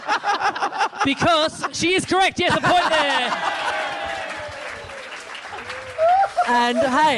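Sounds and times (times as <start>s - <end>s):
laughter: 0.0s - 7.1s
speech: 1.0s - 3.5s, 6.5s - 7.1s
studio audience applause: 1.9s - 7.1s
studio audience cheering: 2.6s - 7.1s.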